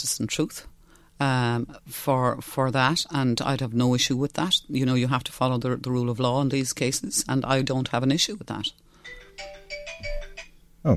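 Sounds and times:
speech: 0.0s - 10.1s
phone ringtone of bright electronic tonal bursts: 9.0s - 10.6s.

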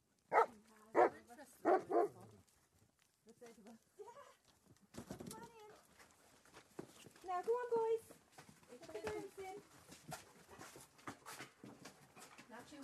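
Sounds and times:
dogs barking: 0.3s - 2.2s
people talking: 0.4s - 2.4s, 3.3s - 4.4s, 5.1s - 5.8s, 7.2s - 8.1s, 8.7s - 9.6s, 12.5s - 12.8s.

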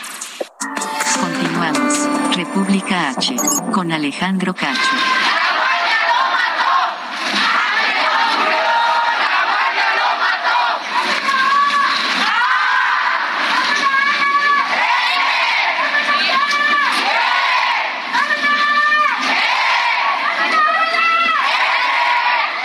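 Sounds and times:
speech: 1.6s - 5.4s
large crowd of students shouting and chanting at a street protest in Irapuato: 4.6s - 22.6s.

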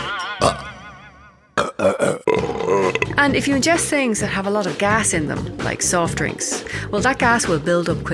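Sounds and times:
short gurgling belches: 0.4s - 0.8s, 1.6s - 3.4s
long drawn-out burp: 0.4s - 0.9s, 1.5s - 3.3s
speech: 3.2s - 8.1s.

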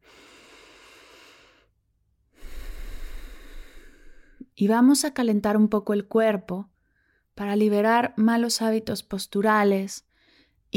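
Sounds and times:
deep breathing during a guided body warm-up: 0.0s - 4.5s
speech: 4.6s - 6.7s, 7.4s - 10.1s.

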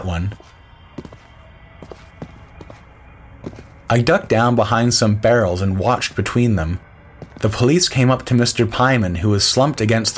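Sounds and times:
speech: 0.0s - 1.1s, 3.9s - 6.8s, 7.4s - 10.1s
footsteps on a hollow boarded pier: 0.3s - 2.8s, 3.4s - 4.5s, 7.2s - 8.8s.

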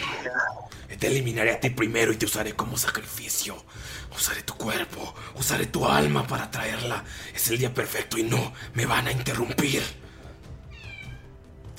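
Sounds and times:
speech: 1.0s - 10.1s
cat meowing: 10.7s - 11.4s.

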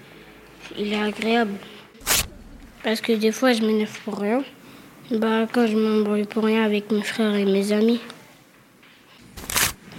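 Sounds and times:
speech: 0.7s - 1.8s, 2.8s - 8.1s
sheet of paper being torn: 2.0s - 2.7s, 9.3s - 9.9s.

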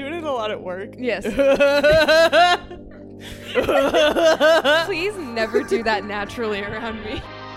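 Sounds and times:
speech: 0.4s - 7.3s
person doing an exaggerated imitation of a distinctive laugh: 1.3s - 4.9s.

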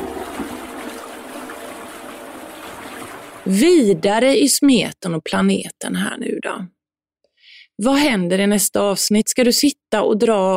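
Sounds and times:
toilet flushing: 0.0s - 4.3s
speech: 3.4s - 6.8s, 7.8s - 10.5s.

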